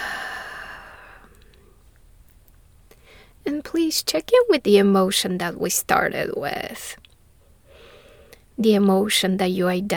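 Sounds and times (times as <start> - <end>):
loud breathy exhale during a guided breathing exercise: 0.0 - 1.3
speech: 3.4 - 7.0, 8.6 - 9.9.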